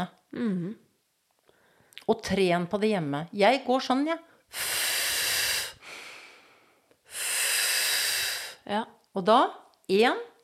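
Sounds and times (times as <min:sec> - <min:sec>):
speech: 0:00.0 - 0:00.8, 0:02.1 - 0:04.8, 0:08.7 - 0:10.3
strong steady blow outward in a breathing exercise demonstration: 0:04.5 - 0:08.7.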